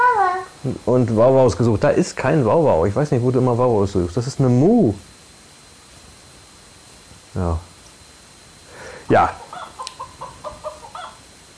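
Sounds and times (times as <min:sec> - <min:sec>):
steady hiss: 0:00.0 - 0:11.5
speech: 0:00.6 - 0:05.1, 0:07.4 - 0:07.7, 0:09.1 - 0:09.4
chickens clucking: 0:09.3 - 0:11.3.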